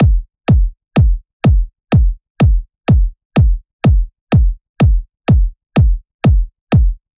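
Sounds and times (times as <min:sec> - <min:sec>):
bass house kick drum: 0:00.0 - 0:07.1.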